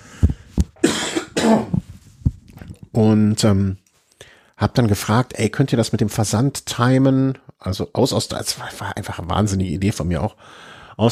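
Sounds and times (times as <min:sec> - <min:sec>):
fit of harsh raspy coughing: 0:00.8 - 0:01.8
speech: 0:01.5 - 0:01.8, 0:03.0 - 0:03.8, 0:04.6 - 0:11.1.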